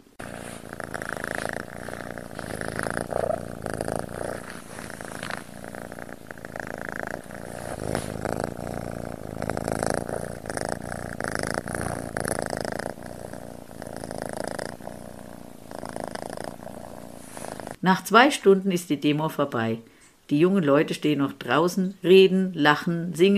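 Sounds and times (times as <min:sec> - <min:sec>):
cat purring loudly: 0:00.0 - 0:17.8
speech: 0:17.9 - 0:23.3.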